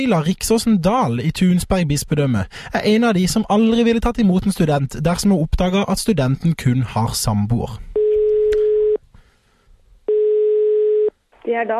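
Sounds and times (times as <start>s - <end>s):
speech: 0.0s - 7.9s, 11.4s - 11.7s
telephone ringback tone before a call connects: 8.0s - 9.0s, 10.1s - 11.1s.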